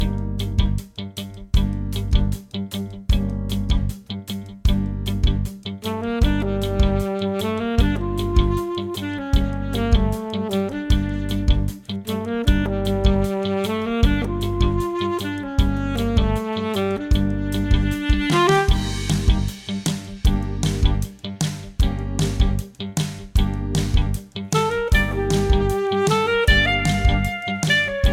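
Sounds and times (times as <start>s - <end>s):
drums: 0.0s - 28.1s
piano: 0.0s - 28.1s
funky saxophone in E-flat and B-flat: 5.9s - 19.5s, 24.5s - 28.1s.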